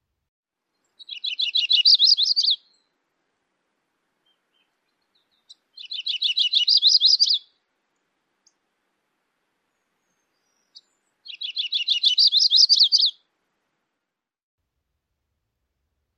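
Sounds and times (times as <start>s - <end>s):
yellow-rumped warbler singing a rising trill: 0.7s - 2.9s, 4.2s - 7.5s, 9.7s - 13.2s.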